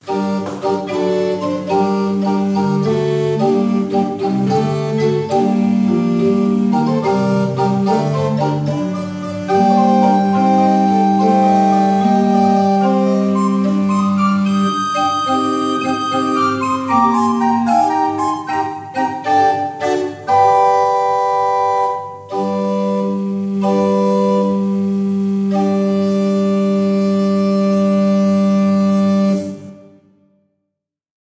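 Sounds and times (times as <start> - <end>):
pipe organ: 0.0 - 30.1.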